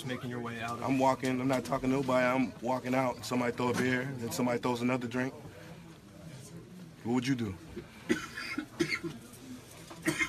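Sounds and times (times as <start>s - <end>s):
speech: 0.0s - 5.5s, 7.0s - 9.2s
person coughing harshly: 8.0s - 9.2s, 10.0s - 10.2s.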